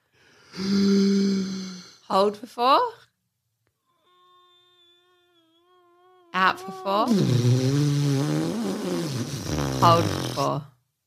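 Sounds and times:
slow deep raspy inhale: 0.0s - 2.1s
speech: 0.6s - 1.0s, 2.1s - 3.0s, 6.4s - 7.9s, 9.2s - 10.7s.

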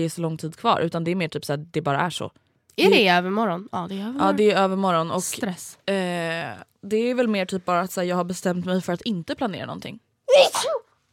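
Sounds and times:
speech: 0.0s - 10.8s
loud sneeze with a sharp two-part burst: 10.3s - 11.0s.

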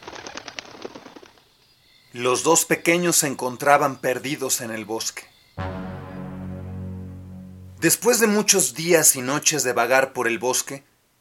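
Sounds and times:
forest birds' wings flapping: 0.0s - 1.4s
speech: 2.1s - 5.8s, 7.8s - 10.9s.

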